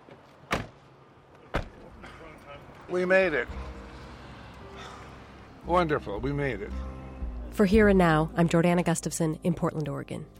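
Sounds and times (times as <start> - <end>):
car doors shutting: 0.5 - 0.8, 1.5 - 2.0
speech: 2.9 - 3.6, 5.6 - 6.9, 7.6 - 10.3.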